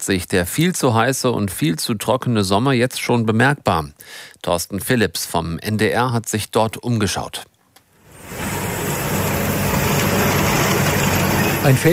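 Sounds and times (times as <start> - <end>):
speech: 0.0 - 7.5, 11.6 - 11.9
tractor with hoe driving through grass: 8.2 - 11.9.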